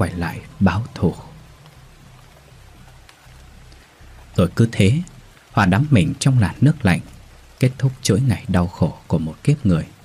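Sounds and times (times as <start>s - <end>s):
speech: 0.0s - 1.3s, 4.4s - 9.9s
heavy rain at a river's edge: 0.0s - 10.0s.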